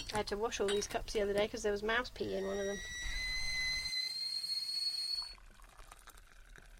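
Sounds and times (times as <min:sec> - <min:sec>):
speech: 0:00.1 - 0:03.2
kettle whistling as water boils: 0:02.2 - 0:06.7.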